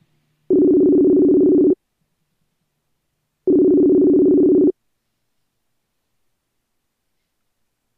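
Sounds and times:
phone ringback tone during an outgoing call: 0.5 - 1.8, 3.5 - 4.7.

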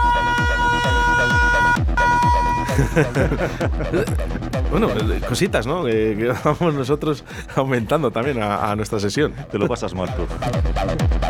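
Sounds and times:
loud steady siren blast: 0.0 - 2.8
pounding electronic beat: 0.0 - 7.2, 9.7 - 11.2
laughter: 2.4 - 10.6
speech: 2.8 - 11.2.

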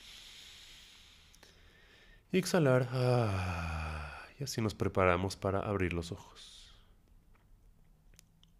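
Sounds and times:
deep inhalation through the nose: 0.0 - 2.2
speech: 2.3 - 3.8, 4.4 - 6.6.

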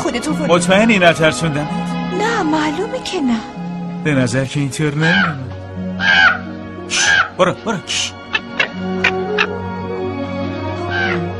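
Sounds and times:
speech: 0.1 - 8.2
crow cawing: 5.0 - 7.4, 8.2 - 9.6, 10.8 - 11.3.

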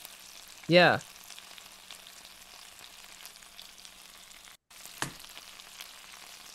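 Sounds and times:
salmon frying in a pan: 0.0 - 6.5
speech: 0.7 - 1.1
sharp pop and spits from frying salmon: 5.0 - 5.4.

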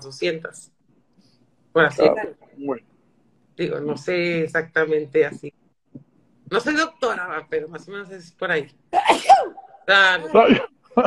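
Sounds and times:
speech: 0.0 - 0.8, 1.8 - 2.9, 3.6 - 5.6, 6.5 - 11.0
person sneezing: 9.0 - 9.6.

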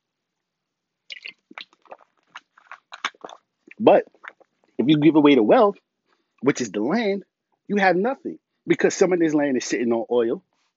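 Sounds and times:
person sipping and swallowing water: 1.1 - 4.8
speech: 3.8 - 4.2, 4.8 - 10.5.

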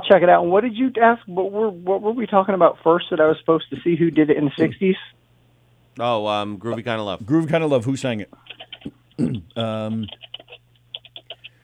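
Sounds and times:
speech: 0.1 - 5.2, 6.0 - 10.3
laughter: 6.0 - 11.6
loud typing on a computer keyboard: 10.1 - 11.5.

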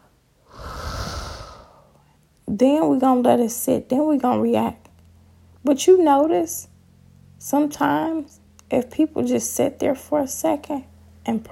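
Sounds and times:
deep breath: 0.4 - 2.2
speech: 2.5 - 4.8, 5.6 - 6.7, 7.4 - 11.5.

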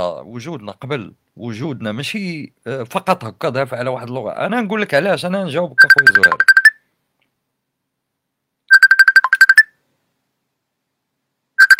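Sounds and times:
speech: 0.0 - 6.6
phone ringtone chirping in electronic bursts: 5.8 - 6.8, 8.7 - 9.8, 11.6 - 11.7.

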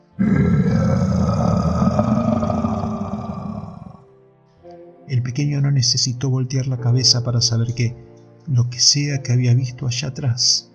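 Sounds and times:
monstrous beast roaring: 0.1 - 4.0
speech: 5.4 - 10.7.

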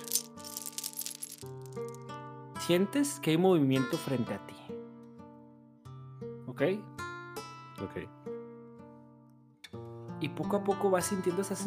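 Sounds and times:
metal shackles rattling and clinking: 0.0 - 2.0
speech: 1.4 - 1.7, 2.7 - 4.6, 6.6 - 6.9, 7.8 - 8.2, 10.2 - 11.6.

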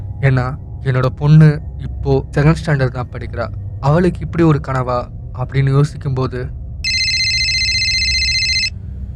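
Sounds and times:
low rumble: 0.0 - 9.1
speech: 0.2 - 6.6
phone ringing with a high electronic tone: 6.9 - 8.7.

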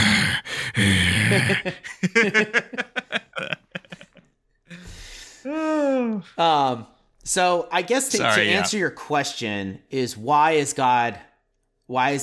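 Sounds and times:
voice imitating heavy raspy breathing into the microphone: 0.0 - 2.0
speech: 0.8 - 2.8, 6.3 - 11.3, 11.9 - 12.2
laughter: 1.2 - 4.3.

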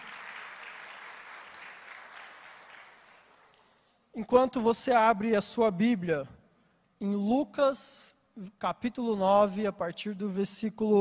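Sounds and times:
audience applause: 0.0 - 3.6
speech: 4.2 - 6.4, 7.0 - 10.9.

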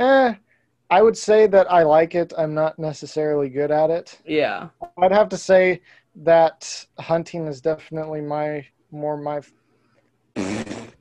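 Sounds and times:
speech: 0.0 - 9.6
person farting: 10.4 - 10.9.

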